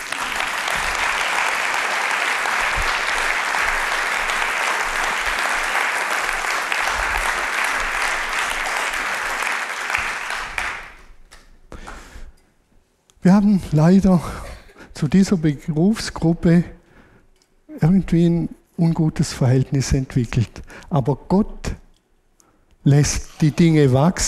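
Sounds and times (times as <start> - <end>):
large audience applauding: 0.0 - 11.1
speech: 13.2 - 14.4, 15.0 - 16.8, 17.9 - 21.6, 22.8 - 24.2.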